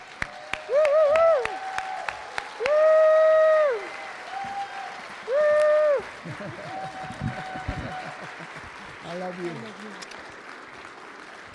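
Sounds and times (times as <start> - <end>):
audience clapping steadily: 0.0 - 11.5
long sustained whooping cheers: 0.2 - 8.5
laughter: 6.1 - 9.0.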